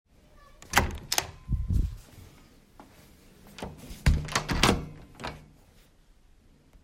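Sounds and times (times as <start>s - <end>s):
door: 0.6s - 1.4s, 3.6s - 5.5s.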